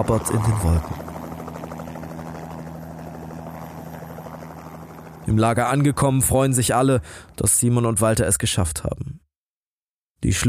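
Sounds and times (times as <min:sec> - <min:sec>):
speech: 0:00.0 - 0:01.0, 0:05.3 - 0:09.2, 0:10.2 - 0:10.4
helicopter rotor drone picking up climbers on the ice near Nanga Parbat: 0:00.0 - 0:07.6.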